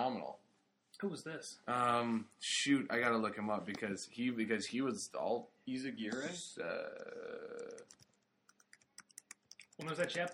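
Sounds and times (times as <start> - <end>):
speech: 0.1 - 0.4, 1.0 - 8.1, 9.8 - 10.3
typing on a computer keyboard: 7.6 - 10.3.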